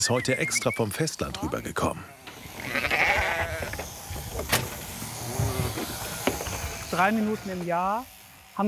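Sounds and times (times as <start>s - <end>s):
speech: 0.0s - 2.8s, 7.0s - 8.6s
sheep bleating while being shorn: 2.0s - 3.8s, 5.2s - 7.7s
continuous mechanical whir: 2.2s - 8.6s.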